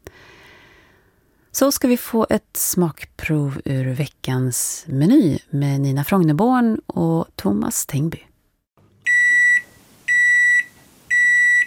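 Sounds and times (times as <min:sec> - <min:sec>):
speech: 0:01.6 - 0:08.3
microwave oven beeping: 0:09.1 - 0:11.6.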